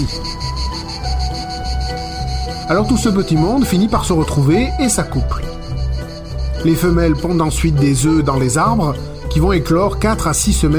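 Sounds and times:
speech: 0.0 - 0.4, 2.7 - 5.5, 6.6 - 10.7
male cicadas buzzing loudly: 0.0 - 10.7.

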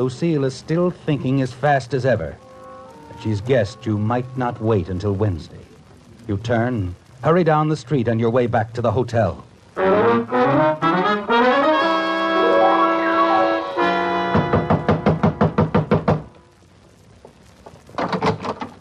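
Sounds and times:
speech: 0.0 - 2.4, 3.1 - 5.7, 6.3 - 10.7
short musical passage: 9.8 - 14.8
rapid loud knocking on a door: 14.3 - 16.3.

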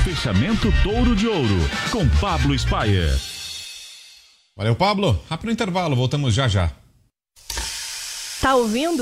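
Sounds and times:
speech: 0.2 - 3.3, 4.6 - 6.8, 8.4 - 9.0
meat searing in a hot pan: 7.4 - 9.0.

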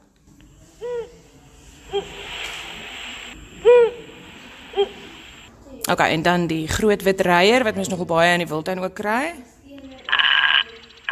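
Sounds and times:
Cape eagle-owl hooting from a sound-reader book: 1.8 - 5.5, 10.0 - 11.1
speech: 1.9 - 2.3, 5.9 - 9.5.

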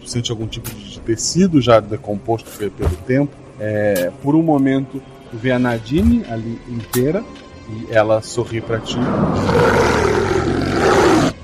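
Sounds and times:
speech: 0.1 - 9.8
deep rough wolf growl: 8.9 - 11.4.

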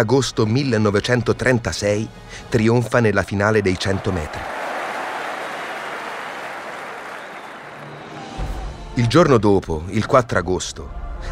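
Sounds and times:
speech: 0.0 - 4.5, 9.0 - 11.2
large stadium crowd cheering and applauding: 3.4 - 8.9.

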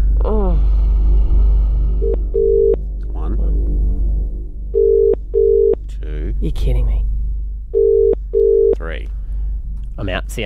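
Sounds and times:
low rumble: 0.0 - 10.4
phone line tones after a number is dialed: 4.8 - 5.8, 7.8 - 8.8
speech: 6.5 - 7.1, 8.8 - 9.2, 10.0 - 10.4.

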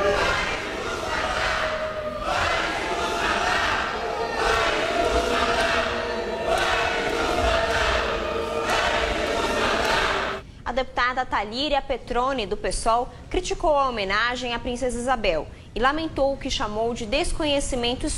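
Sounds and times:
crowd of protesters booing and shouting in a parliament plenary: 0.0 - 10.4
speech: 10.8 - 18.1.

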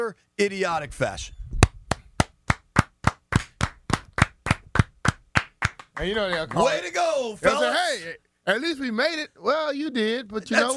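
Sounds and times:
speech: 0.0 - 1.4, 6.0 - 10.7
single pair of hands clapping: 1.6 - 7.0.

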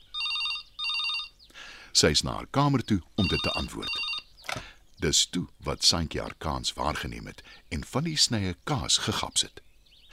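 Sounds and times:
telephone ringing in electronic trills: 0.0 - 1.4, 3.2 - 4.6
speech: 2.0 - 10.1.

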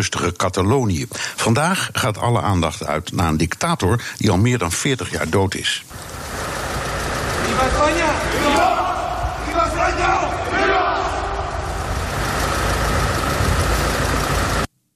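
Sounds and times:
speech: 0.0 - 6.2, 7.5 - 8.8
hearse engine idling and pulling away in Spain: 5.9 - 9.0, 11.4 - 14.7
crowd shouting and murmuring in Spain: 8.1 - 12.4.

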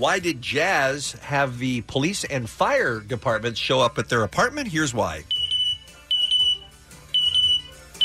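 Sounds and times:
speech: 0.0 - 5.4
African grey parrot imitating smoke detector beeps: 5.3 - 8.0.

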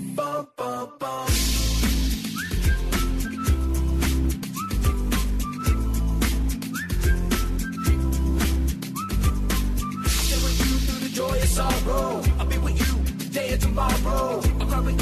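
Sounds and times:
whistle toots with a quick upward slide: 1.3 - 12.3
loud busy music track with heavy drums and booming bass: 1.3 - 15.0.

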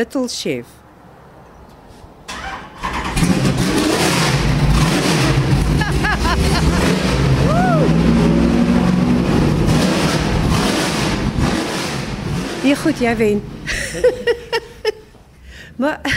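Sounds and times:
speech: 0.0 - 0.8, 12.7 - 14.4, 15.8 - 16.1
car engine revving through short exhaust: 2.3 - 13.7
laughter: 5.6 - 7.1, 13.7 - 15.1.

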